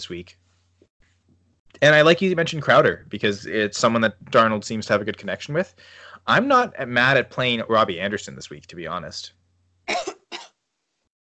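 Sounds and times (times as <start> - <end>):
speech: 0.0 - 0.4, 1.8 - 10.1
cough: 9.9 - 10.6.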